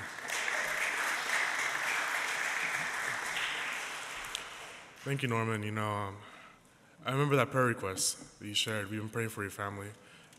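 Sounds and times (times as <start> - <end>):
crowd applauding: 0.0 - 5.1
speech: 5.0 - 6.3, 7.0 - 10.1.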